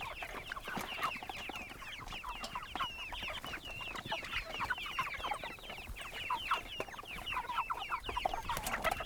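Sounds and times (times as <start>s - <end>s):
chickens clucking on a goat farm: 0.0s - 9.0s.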